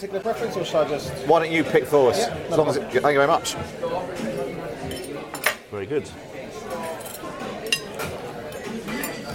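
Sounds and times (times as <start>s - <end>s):
speech: 0.0s - 4.3s, 5.7s - 6.8s
steady restaurant murmur during lunch: 0.0s - 9.3s
cutlery and glassware clinking at restaurant lunch: 4.1s - 5.7s, 6.6s - 9.3s.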